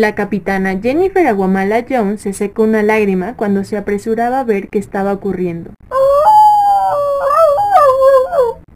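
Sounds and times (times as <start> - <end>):
speech: 0.0 - 6.2
dog howling mournfully: 5.9 - 8.7.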